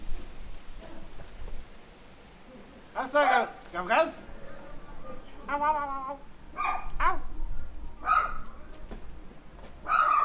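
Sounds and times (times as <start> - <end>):
faint noise: 0.0 - 10.2
speech: 3.0 - 4.3, 5.5 - 7.2
dog barking with a whining high-pitched edge: 3.2 - 3.6, 6.5 - 7.2, 8.0 - 8.5, 9.8 - 10.2.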